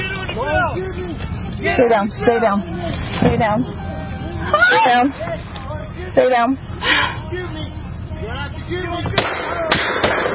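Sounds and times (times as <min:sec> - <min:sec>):
dense rumbling background: 0:00.0 - 0:10.3
speech: 0:01.7 - 0:03.8, 0:04.5 - 0:05.4, 0:06.1 - 0:07.6, 0:08.7 - 0:09.6
gunshots fired at a car: 0:09.2 - 0:10.3.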